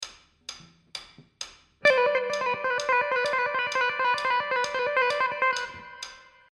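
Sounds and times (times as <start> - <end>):
guitar: 1.8 - 6.5.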